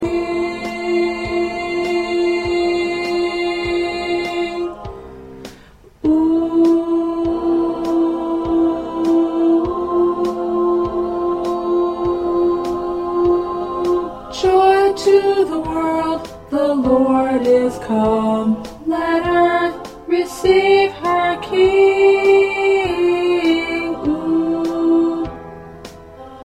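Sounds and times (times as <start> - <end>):
second alto part of choir singing christmas songs: 0.0 - 26.4.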